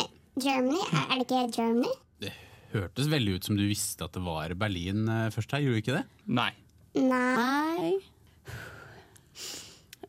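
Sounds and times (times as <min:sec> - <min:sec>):
speech: 0:00.4 - 0:08.7
sharp breathy inhale: 0:08.4 - 0:09.9.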